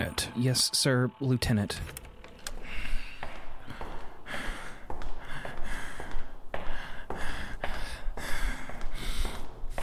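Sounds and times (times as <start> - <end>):
speech: 0.4 - 2.0
heavy panicked breathing with ragged gasps: 2.4 - 9.8.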